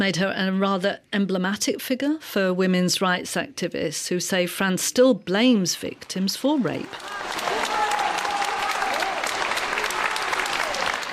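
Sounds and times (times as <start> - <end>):
speech: 0.0 - 7.5
crowd clapping and cheering outside a courtroom in France: 6.6 - 11.1.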